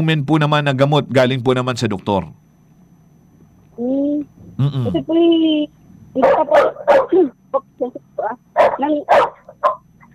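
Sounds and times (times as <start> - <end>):
speech: 0.0 - 2.4, 4.6 - 9.8
dog barking and yipping: 6.2 - 7.3, 8.6 - 9.9.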